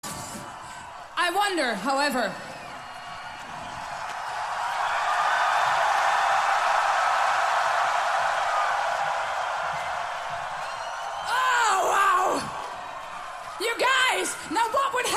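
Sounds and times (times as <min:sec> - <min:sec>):
large crowd screaming in a sustained roar: 0:00.0 - 0:15.1
speech: 0:01.3 - 0:02.5
individual high-pitched shrieks and whoops: 0:10.6 - 0:12.7.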